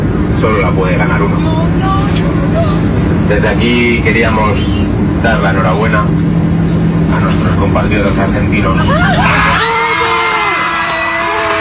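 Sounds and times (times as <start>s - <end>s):
speech: 0.4s - 6.4s, 7.2s - 9.5s
passengers aboard a plane in flight shouting and cheering in celebration: 0.8s - 3.5s, 8.4s - 11.5s.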